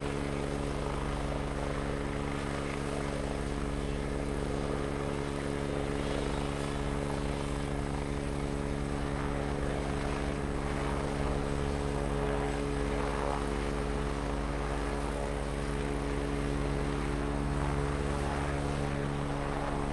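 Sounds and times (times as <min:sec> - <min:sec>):
Agusta A109 helicopter idling, taking off and flying away: 0:00.0 - 0:19.9.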